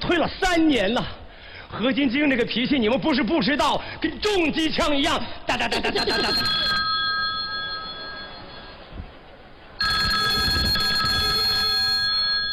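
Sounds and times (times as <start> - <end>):
speech: 0.1 - 6.7
laughter: 5.5 - 6.9
telephone ringing with bright steady electronic tone: 6.0 - 8.9, 9.8 - 12.5.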